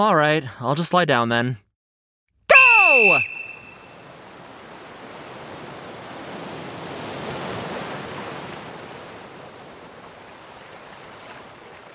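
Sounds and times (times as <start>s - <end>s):
speech: 0.0s - 1.6s, 3.0s - 3.3s
ocean surf washing onto the shore: 3.3s - 11.9s.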